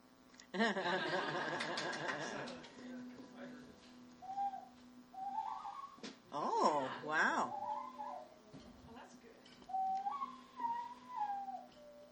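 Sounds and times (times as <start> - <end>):
laughter: 0.5 - 2.9
speech: 0.5 - 3.0, 6.3 - 7.6
dog whistle rising blasts: 4.2 - 6.0, 9.7 - 12.1.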